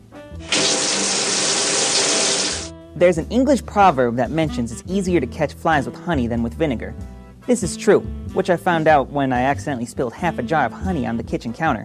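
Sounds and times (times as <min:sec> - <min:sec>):
shower water running: 0:00.4 - 0:02.7
speech: 0:03.0 - 0:11.8.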